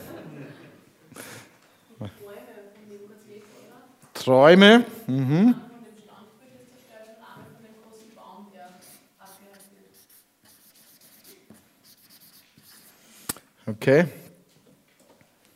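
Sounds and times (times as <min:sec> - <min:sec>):
laughter: 0:00.0 - 0:01.2
speech: 0:04.2 - 0:05.6, 0:13.8 - 0:14.2
pen or marker handwriting strokes: 0:08.8 - 0:13.0.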